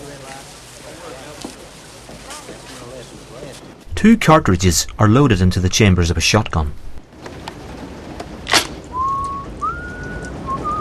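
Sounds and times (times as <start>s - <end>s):
speech: 3.4s - 6.9s
person whistling long steady notes: 8.9s - 10.8s.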